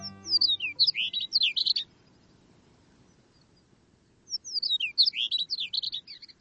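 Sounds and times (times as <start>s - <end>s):
chestnut-collared longspur singing bright tumbling warbled phrases: 0.0s - 2.0s, 4.3s - 6.3s.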